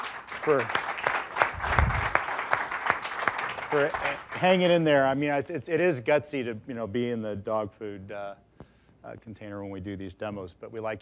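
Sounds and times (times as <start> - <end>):
sparse audience clapping at a live technology demo presentation: 0.0 - 4.9
speech: 0.4 - 0.8, 3.7 - 11.0.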